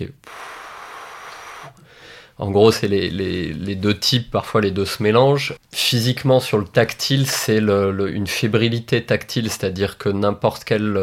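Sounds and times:
speech: 0.0s - 0.2s, 1.6s - 11.0s
voice imitating white noise tinnitus with a breathy hiss: 0.2s - 2.3s.

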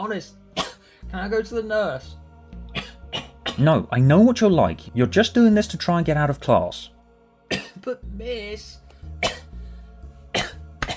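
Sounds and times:
speech: 0.0s - 0.4s, 1.0s - 6.9s, 7.5s - 9.4s
harsh coughing: 0.6s - 0.9s, 2.7s - 3.8s, 7.5s - 7.9s, 9.2s - 9.6s, 10.3s - 10.9s.

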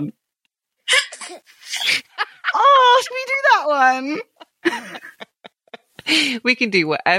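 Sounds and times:
baby sneezing: 0.9s - 2.0s
speech: 0.9s - 5.2s, 6.1s - 7.1s
laughter: 1.8s - 6.3s.

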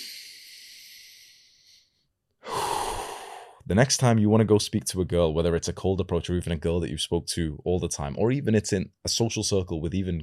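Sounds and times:
deep full breath drawn into the lower stomach: 0.0s - 3.6s
rush of breath: 2.4s - 3.6s
speech: 3.7s - 10.2s.

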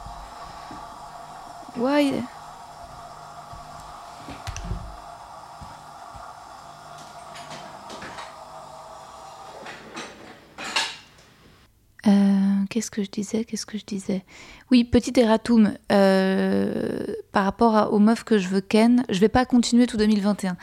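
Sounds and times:
dishwasher whirring with a steady mechanical hum: 0.0s - 11.7s
speech: 1.8s - 2.4s, 12.8s - 20.6s
dishes clunking and rattling inside a dishwasher: 9.6s - 11.2s.

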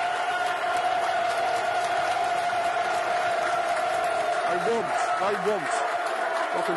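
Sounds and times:
football crowd roaring and cheering at a corner: 0.0s - 6.7s
speech: 4.5s - 6.7s.

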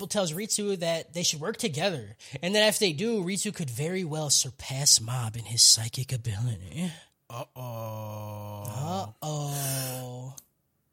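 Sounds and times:
speech: 0.0s - 8.2s
person yawning: 7.3s - 10.4s.

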